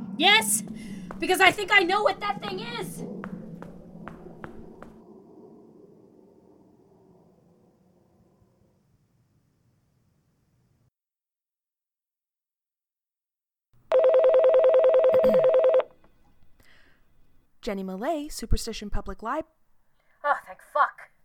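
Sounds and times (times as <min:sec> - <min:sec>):
speech: 0:00.2 - 0:03.2, 0:17.7 - 0:19.6
phone being dialed with clicks and tones: 0:13.9 - 0:15.9.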